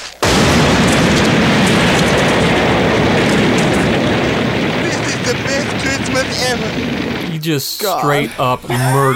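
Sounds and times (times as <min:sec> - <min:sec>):
bomb blast blowing up a shack: 0:00.2 - 0:07.4
roar and crackle of destruction: 0:00.2 - 0:07.4
speech: 0:07.4 - 0:09.1.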